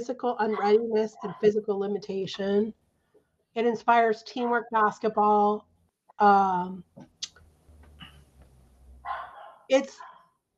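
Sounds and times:
speech: 0.0 - 2.8, 3.6 - 7.1, 9.7 - 10.1
dogs barking on a windy day: 9.0 - 10.2.

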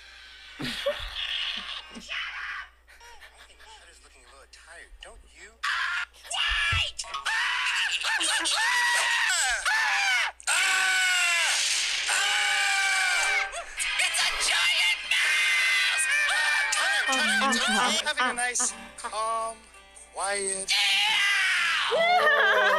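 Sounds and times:
laughter: 0.6 - 2.1, 2.9 - 4.5, 7.4 - 9.6, 13.2 - 19.6, 21.9 - 22.7
high-pitched cartoon mouse character voice screaming: 5.6 - 13.6, 14.9 - 18.7, 20.7 - 22.7
speech: 17.7 - 20.8, 21.9 - 22.7.

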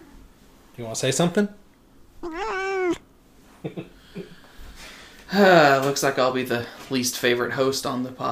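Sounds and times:
speech: 0.8 - 1.6, 5.3 - 8.3
cat meowing: 2.2 - 3.0.

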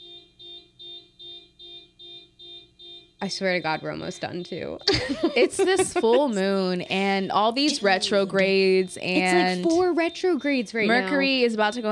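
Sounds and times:
car alarm repeated electronic honks: 0.0 - 4.8, 7.5 - 11.9
speech: 3.2 - 11.9
laughter: 4.8 - 9.9.

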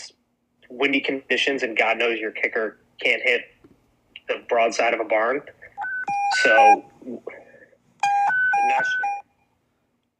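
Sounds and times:
speech: 0.8 - 3.6, 4.3 - 5.6, 6.4 - 7.4, 8.6 - 9.1
panic alarm sound effect with alternating low and high electronic tones: 5.8 - 6.9, 8.0 - 9.3.

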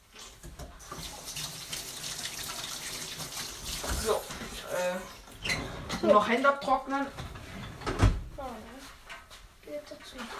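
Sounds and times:
tap water running at a kitchen sink: 0.0 - 5.5
hands washed under a running tap at a kitchen sink: 0.1 - 4.7
speech: 6.0 - 7.2, 10.1 - 10.3.

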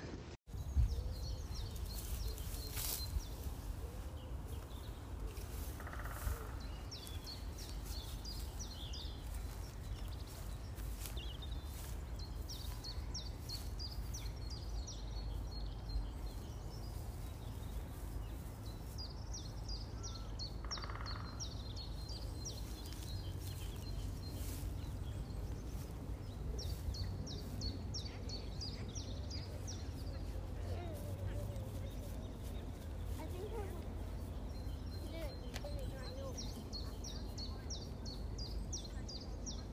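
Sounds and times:
steady low rumble of wind: 0.0 - 39.7
woodpecker calling outdoors: 20.2 - 21.6.

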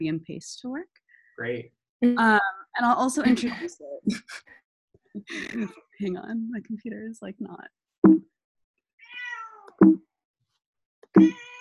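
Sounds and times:
speech: 0.0 - 4.6, 5.2 - 8.3, 9.8 - 10.1, 11.2 - 11.5
cat meowing: 9.0 - 9.7, 11.2 - 11.6
thumps: 9.7 - 10.0.

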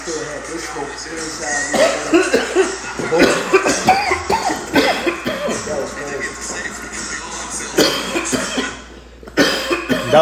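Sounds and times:
murmured voices: 0.0 - 10.2
speech: 0.1 - 4.1
several people coughing: 1.5 - 6.7, 7.5 - 10.2
people chuckling: 1.7 - 8.9.

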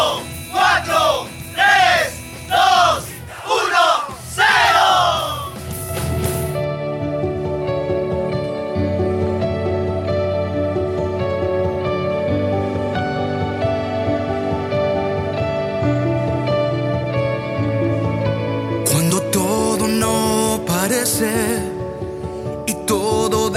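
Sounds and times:
wavering singing voice: 0.0 - 5.6, 18.8 - 22.0, 22.6 - 23.5
worship-style song with full band playing loudly: 0.0 - 23.5
crashing drums: 4.1 - 6.6.

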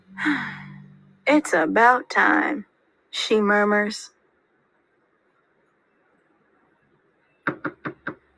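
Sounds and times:
speech: 0.2 - 0.6, 1.3 - 4.2
firm knocking on a wooden door: 7.5 - 8.2.

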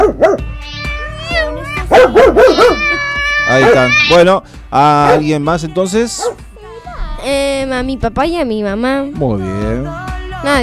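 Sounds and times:
female dog yipping and barking excitedly: 0.0 - 0.4, 1.8 - 4.2, 5.0 - 5.3
speech: 3.6 - 6.5, 7.2 - 10.6.

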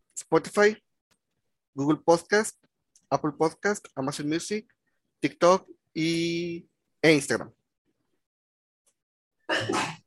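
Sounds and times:
speech: 0.3 - 0.8, 1.8 - 7.6, 9.5 - 9.9
single loud sneeze: 9.5 - 10.0.

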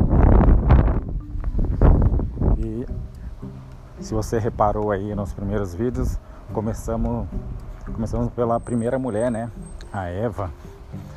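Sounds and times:
strong wind buffeting the microphone: 0.0 - 3.4
speech: 4.1 - 11.1.

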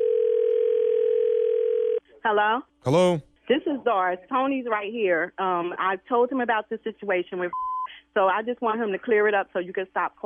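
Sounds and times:
telephone dial tone while placing a three-way call: 0.0 - 2.0
speech: 2.2 - 10.2.

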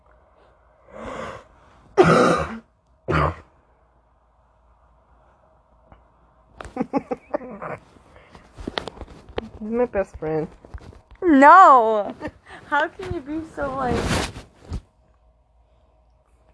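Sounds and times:
person coughing and clearing throat: 2.0 - 3.5
speech: 9.6 - 14.3.

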